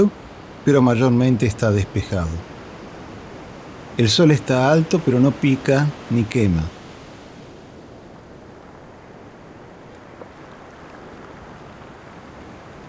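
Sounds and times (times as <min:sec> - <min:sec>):
speech: 0:00.0 - 0:02.5, 0:04.0 - 0:06.8
ocean surf washing onto a shore: 0:00.0 - 0:12.8.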